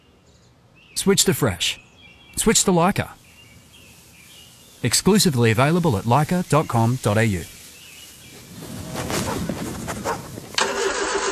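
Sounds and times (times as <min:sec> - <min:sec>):
speech: 0:01.0 - 0:01.8, 0:02.4 - 0:03.2, 0:04.8 - 0:07.6
ute engine cranking and struggling to start: 0:10.5 - 0:11.3.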